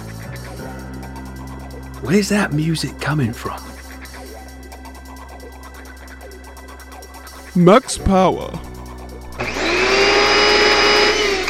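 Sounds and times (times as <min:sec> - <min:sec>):
speech: 0:02.0 - 0:03.7, 0:07.6 - 0:08.7
vacuum cleaner running: 0:09.3 - 0:11.4.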